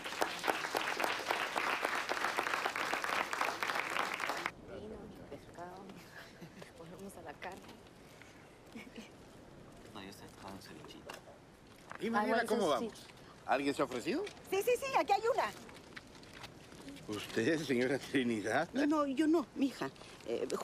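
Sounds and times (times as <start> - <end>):
audience applause: 0.0 - 4.5
speech: 12.0 - 15.6, 17.1 - 20.6.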